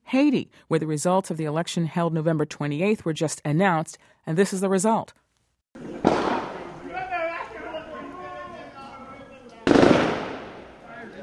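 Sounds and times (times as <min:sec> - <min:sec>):
speech: 0:00.1 - 0:05.2
gunshots on a street with rolling echo: 0:05.8 - 0:06.8, 0:09.6 - 0:10.8.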